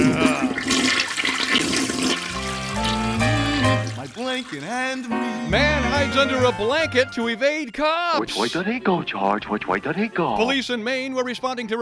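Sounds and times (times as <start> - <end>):
toilet flushing with rushing water: 0.0 - 5.5
speech: 4.4 - 11.7.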